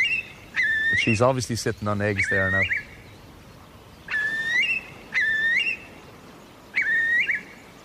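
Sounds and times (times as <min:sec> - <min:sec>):
curlew whistled call over a bog: 0:00.0 - 0:01.3, 0:02.2 - 0:03.0, 0:04.0 - 0:06.1, 0:06.7 - 0:07.7
speech: 0:00.9 - 0:02.9.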